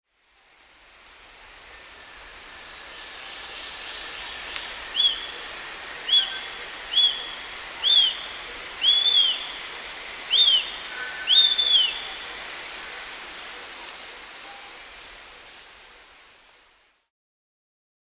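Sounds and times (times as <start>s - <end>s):
shrill insect drone: 0.2s - 17.0s
Wallace's hawk-eagle high whistled notes: 6.1s - 9.6s, 10.3s - 12.1s.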